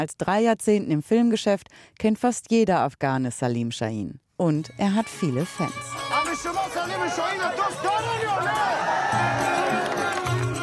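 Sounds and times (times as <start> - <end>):
speech: 0.0 - 8.7
crowd of onlookers shouting and cheering at a film shoot: 5.9 - 10.6.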